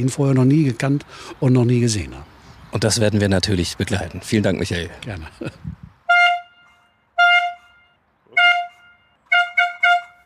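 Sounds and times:
speech: 0.0 - 5.8
toy horn blasts as a starting signal for an event: 6.1 - 10.2.

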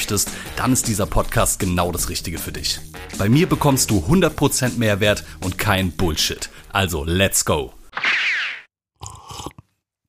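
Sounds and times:
speech: 0.1 - 7.8
brief swishing noise: 8.0 - 8.7
big hearty sip of coffee: 9.0 - 10.0.

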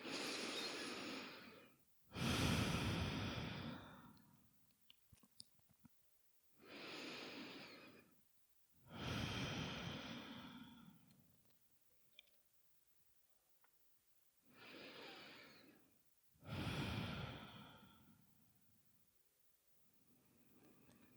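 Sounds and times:
slow deep breathing exhaling through open mouth: 0.0 - 4.4, 6.6 - 8.2, 8.9 - 11.2, 14.5 - 18.3.

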